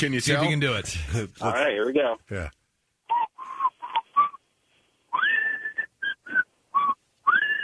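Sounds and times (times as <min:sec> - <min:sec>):
speech: 0:00.0 - 0:02.6
person whistling a TV theme tune slowly and mournfully: 0:05.2 - 0:07.6.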